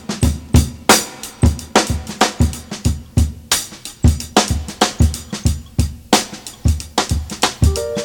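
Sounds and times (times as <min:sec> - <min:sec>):
fresh breakbeat at 92 bpm in D sharp key: 0:00.3 - 0:08.0.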